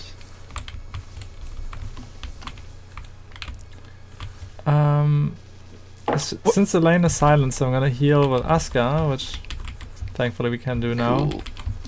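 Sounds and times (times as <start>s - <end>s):
low steady hum: 0.0s - 11.8s
computer keyboard typing: 0.5s - 4.4s, 8.2s - 10.1s, 11.4s - 11.8s
speech: 6.2s - 9.4s, 10.2s - 11.5s.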